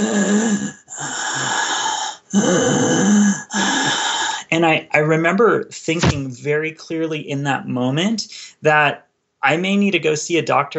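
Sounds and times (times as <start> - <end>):
voice imitating labored wheezing breathing: 0.0 - 4.5
speech: 2.3 - 3.2, 4.6 - 10.7.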